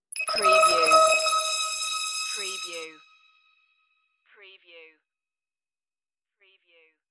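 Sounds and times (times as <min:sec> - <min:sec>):
crystal interface beam: 0:00.0 - 0:03.2.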